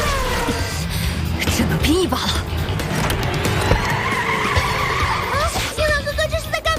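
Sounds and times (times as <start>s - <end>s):
race car engine revving: 0.0s - 6.1s
speech: 1.6s - 2.6s
race car tire squeal while drifting toward the track edge: 3.4s - 5.8s.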